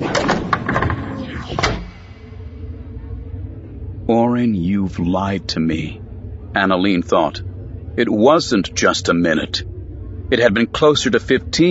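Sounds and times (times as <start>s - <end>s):
office door swinging shut with a clattering rush and solid thud: 0.0s - 1.9s
speech: 4.4s - 6.0s, 6.6s - 9.7s, 10.3s - 11.6s.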